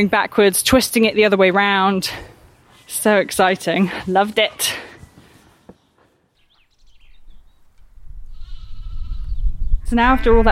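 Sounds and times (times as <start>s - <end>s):
speech: 0.0s - 2.3s, 2.9s - 4.9s, 9.9s - 10.5s
low wind-like rumble: 7.0s - 10.5s
newborn lambs bleating in a countryside field: 8.3s - 9.3s.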